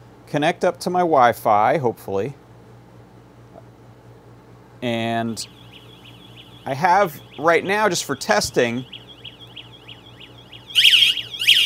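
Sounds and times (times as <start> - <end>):
speech: 0.3 - 2.4, 4.8 - 5.6, 6.6 - 9.0
electronic alarm buzzer on a Wi-Fi-connected board being tested: 5.4 - 11.6.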